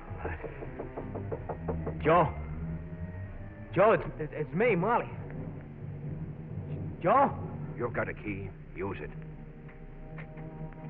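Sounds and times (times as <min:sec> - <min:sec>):
knocking on a door in a rooming house: 0:00.3 - 0:02.3
speech: 0:02.0 - 0:02.4, 0:03.7 - 0:05.2, 0:07.0 - 0:09.3.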